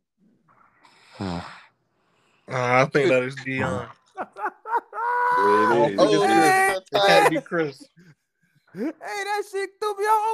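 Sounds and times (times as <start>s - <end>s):
man snoring after falling asleep on a phone call: 1.1s - 1.7s
speech: 1.2s - 1.6s, 2.5s - 4.0s, 5.4s - 8.1s, 8.7s - 10.3s
laughter: 4.0s - 7.9s.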